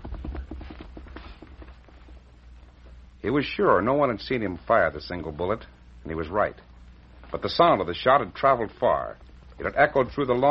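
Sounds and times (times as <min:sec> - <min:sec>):
horse hooves clattering as a rider gallops away from a mountain pass: 0:00.0 - 0:02.5
speech: 0:03.2 - 0:06.7, 0:07.3 - 0:10.4.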